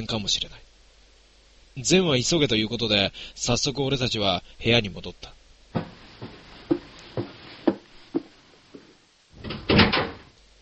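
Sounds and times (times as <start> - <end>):
speech: 0.0 - 0.7, 1.8 - 5.8
soft knocks of a room door being shut and locked: 5.8 - 8.3
room door lock rattling clatter: 9.4 - 10.2.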